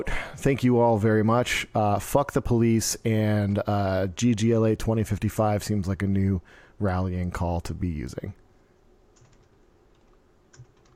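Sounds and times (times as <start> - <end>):
speech: 0.0 - 8.4
typing on a computer keyboard: 9.1 - 10.9.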